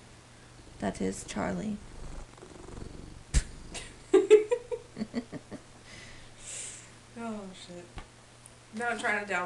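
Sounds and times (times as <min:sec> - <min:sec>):
cat purring close to the microphone: 0:00.0 - 0:04.2
speech: 0:00.8 - 0:01.9, 0:07.2 - 0:08.0, 0:08.7 - 0:09.4.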